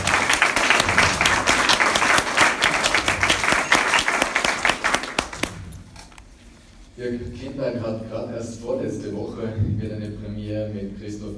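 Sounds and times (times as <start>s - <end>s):
crowd applauding with many hands clapping: 0.0s - 5.6s
speech: 7.0s - 11.3s.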